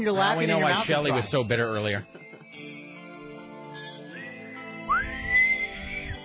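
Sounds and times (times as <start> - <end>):
speech: 0.0 - 2.2
person attempting to whistle: 4.9 - 6.2.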